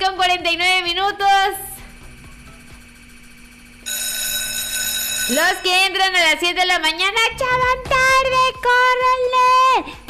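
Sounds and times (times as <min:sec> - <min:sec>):
speech: 0:00.1 - 0:01.7, 0:05.3 - 0:10.0
morning alarm ringing with an electronic bell tone: 0:01.8 - 0:06.5.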